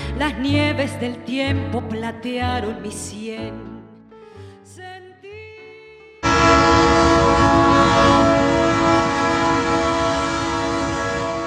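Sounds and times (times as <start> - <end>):
speech: 0.2 - 3.7
freight train horn blaring: 6.2 - 11.4.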